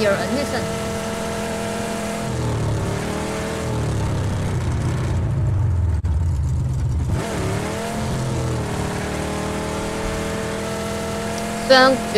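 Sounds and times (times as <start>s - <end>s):
sports car engine revving in a video game: 0.0s - 12.1s.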